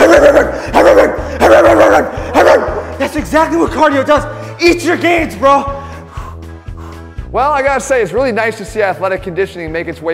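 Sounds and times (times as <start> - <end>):
dog barking aggressively: 0.0 - 2.8
speech: 3.3 - 5.8, 7.4 - 10.1.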